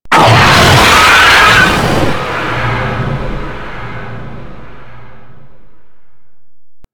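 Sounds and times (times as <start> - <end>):
golem monster attack roar: 0.1 - 5.3.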